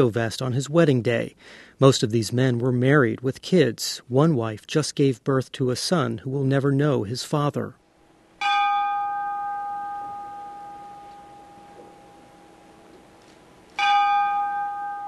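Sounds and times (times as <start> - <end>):
speech: 0.0 - 7.8
ship's bell struck at a memorial ceremony in a convention hall: 8.4 - 12.9, 13.8 - 15.0.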